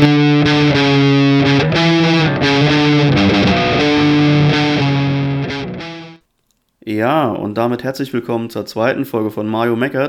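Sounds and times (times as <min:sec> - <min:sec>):
heavily distorted electric guitar in B-standard baritone tuning playing chords and riffs: 0:00.0 - 0:06.2
speech: 0:07.1 - 0:10.0.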